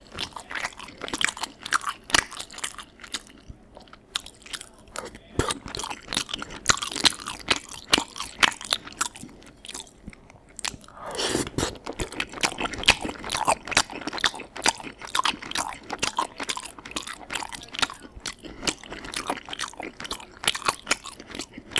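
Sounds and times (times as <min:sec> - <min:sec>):
noisy eating: 0:00.0 - 0:21.7.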